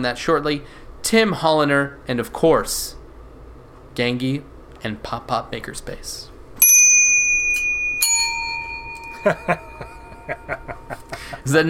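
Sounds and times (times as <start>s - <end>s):
speech: 0.0s - 3.0s, 4.0s - 6.3s, 9.2s - 9.7s, 11.4s - 11.6s
small bellhop-style service bell ringing: 6.6s - 11.4s.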